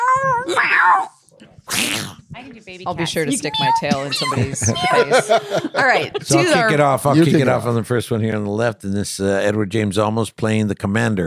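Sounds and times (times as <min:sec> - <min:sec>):
person imitating cat meows: 0:00.0 - 0:01.1
speech: 0:00.4 - 0:11.2
laughter: 0:03.1 - 0:07.9.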